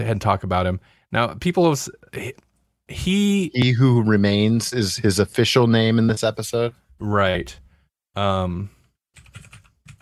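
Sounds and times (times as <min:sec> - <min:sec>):
speech: 0:00.0 - 0:07.6, 0:08.2 - 0:08.8
clicky computer keyboard typing: 0:09.2 - 0:09.9.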